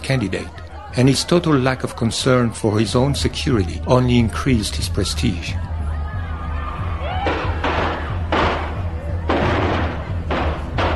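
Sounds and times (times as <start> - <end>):
crowd talking: 0.0 - 10.9
speech: 0.1 - 5.7
firecrackers popping: 7.3 - 10.9.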